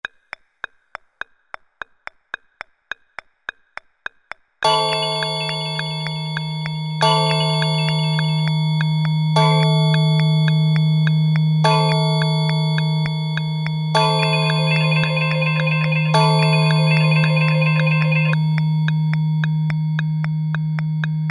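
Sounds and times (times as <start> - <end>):
clock: 4.6 - 21.2.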